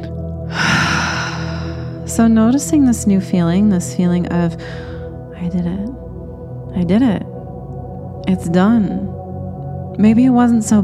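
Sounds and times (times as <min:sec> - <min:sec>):
soft low drone humming: 0:00.0 - 0:10.8
deep airy breath during breathwork exercise: 0:00.5 - 0:02.1, 0:04.6 - 0:05.2
speech: 0:02.1 - 0:06.0, 0:06.8 - 0:07.3, 0:08.3 - 0:09.2, 0:10.0 - 0:10.8.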